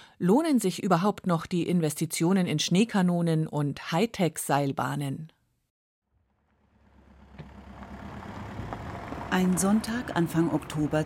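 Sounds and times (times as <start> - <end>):
speech: 0.2 - 5.4, 9.3 - 11.0
vehicle engine idling in a mountain parking lot: 6.1 - 11.0.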